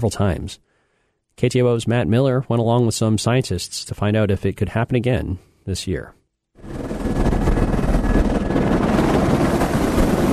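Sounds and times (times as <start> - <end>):
speech: 0.0 - 0.7, 1.4 - 6.8
helicopter in flight banking into descent, rotor and engine roar: 6.6 - 10.3.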